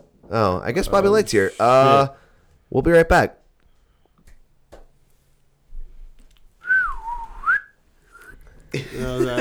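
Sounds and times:
speech: 0.3s - 3.4s, 8.7s - 9.3s
burst of mixed sound: 0.9s - 2.2s
whistle blown to mark a break: 6.6s - 8.4s
laughter: 8.7s - 9.3s.

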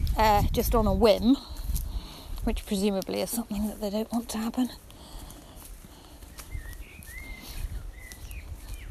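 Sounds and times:
speech: 0.2s - 1.6s, 2.5s - 4.9s
blackbird singing fluting whistled phrases: 6.3s - 8.8s.

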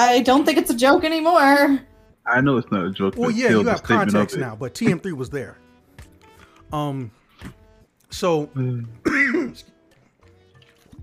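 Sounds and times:
speech: 0.0s - 5.6s, 6.7s - 9.8s
person clearing throat to dislodge green pepper: 9.0s - 9.7s.

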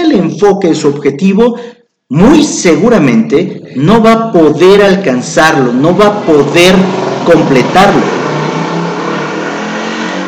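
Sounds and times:
speech: 0.4s - 8.2s
motorcycle engine roar passing by: 5.6s - 10.2s.

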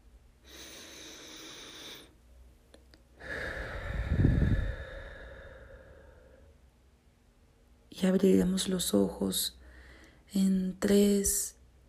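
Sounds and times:
deep breath in through the nose and out during a guided meditation: 0.4s - 2.2s, 3.2s - 6.6s, 9.6s - 10.2s
speech: 8.0s - 9.6s, 10.3s - 11.6s.

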